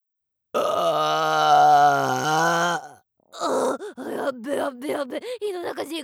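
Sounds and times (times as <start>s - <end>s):
long deep rumbling burp: 0.6s - 3.8s
speech: 4.4s - 6.0s.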